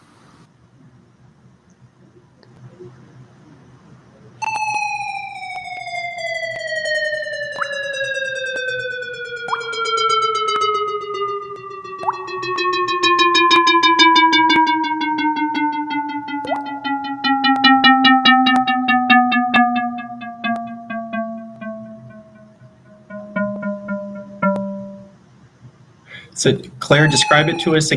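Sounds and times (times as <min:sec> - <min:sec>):
sustained electronic tone sonifying a line graph gliding downward: 0:04.4 - 0:25.2, 0:26.9 - 0:27.9
brief water-droplet plinks: 0:12.0 - 0:12.3, 0:16.4 - 0:16.7
speech: 0:26.4 - 0:27.9.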